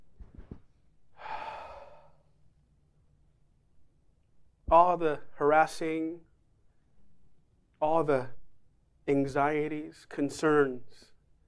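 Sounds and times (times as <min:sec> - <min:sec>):
deep exhale: 0:01.1 - 0:02.3
speech: 0:04.7 - 0:06.3, 0:07.8 - 0:08.4, 0:09.1 - 0:11.1.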